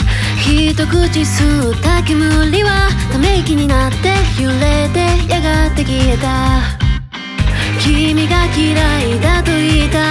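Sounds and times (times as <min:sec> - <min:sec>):
bass note A: 0:00.0 - 0:10.0.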